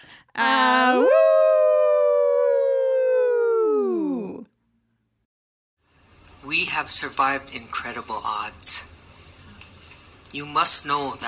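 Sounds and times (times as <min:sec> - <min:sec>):
speech: 0:00.4 - 0:01.3, 0:06.8 - 0:09.0, 0:10.3 - 0:11.2
person imitating a wolf's howl: 0:00.4 - 0:04.5.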